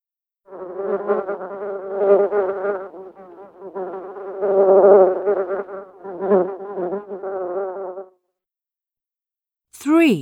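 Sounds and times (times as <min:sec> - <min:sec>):
bee buzzing: 0:00.5 - 0:08.1
speech: 0:00.9 - 0:01.3, 0:10.0 - 0:10.2.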